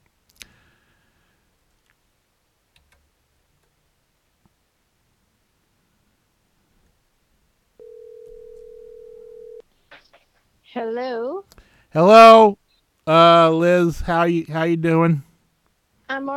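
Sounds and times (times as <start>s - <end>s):
quiet telephone line hiss: 7.8s - 9.6s
speech: 10.0s - 15.3s, 16.1s - 16.3s.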